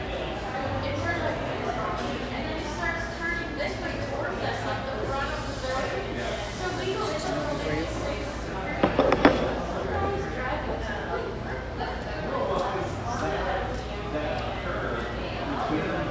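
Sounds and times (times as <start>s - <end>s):
dense chatter of many voices in a busy café in Irvine California: 0.0s - 16.1s
dishes or cutlery clinking: 8.8s - 9.8s.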